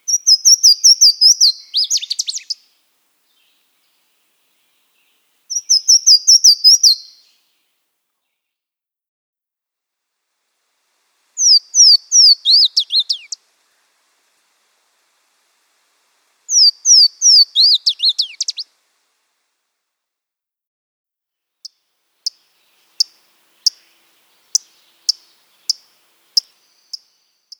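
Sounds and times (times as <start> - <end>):
Louisiana waterthrush singing: 0.0 - 7.4, 11.4 - 13.4, 16.5 - 18.7, 22.3 - 27.5.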